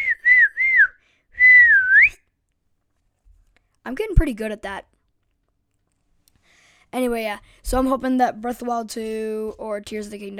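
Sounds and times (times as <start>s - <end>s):
person whistling to call a horse: 0.0s - 2.3s
speech: 3.9s - 4.9s, 6.9s - 10.3s.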